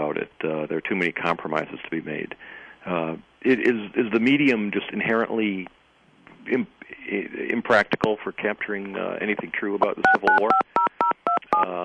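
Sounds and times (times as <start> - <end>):
speech: 0.1 - 5.8, 6.4 - 10.7, 11.5 - 11.8
telephone keypad button tones: 9.9 - 11.7
steady telephone tone: 10.0 - 11.8.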